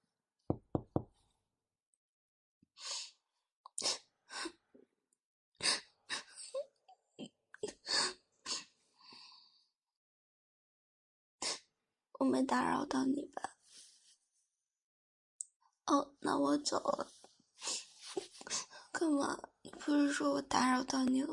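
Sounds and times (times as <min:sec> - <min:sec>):
sharp knocks on a door: 0:00.5 - 0:01.1
speech: 0:12.3 - 0:13.5, 0:15.9 - 0:17.2, 0:19.0 - 0:21.3
soft rustling and shuffling: 0:17.0 - 0:18.6.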